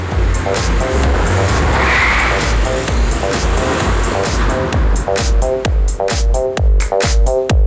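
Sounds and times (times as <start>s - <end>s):
car tires squealing: 0.0s - 5.3s
car speeding off with engine roar: 0.0s - 7.5s.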